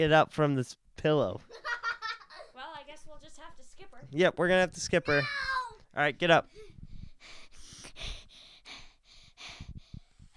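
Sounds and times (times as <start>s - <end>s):
speech: 0.0s - 1.7s, 3.4s - 7.4s
heavy rapid panting: 6.5s - 10.3s.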